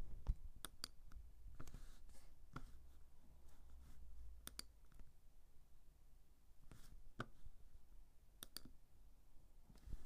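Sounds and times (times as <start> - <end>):
soft steady hiss: 0.0 - 10.0
computer mouse clicks: 0.6 - 1.8, 4.4 - 5.0, 8.4 - 8.8.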